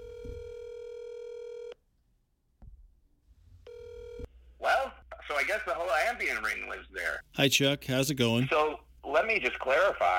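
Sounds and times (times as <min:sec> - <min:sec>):
steady electronic telephone tone as a number is dialed: 0:00.0 - 0:01.8, 0:03.7 - 0:04.3
speech: 0:05.4 - 0:10.1.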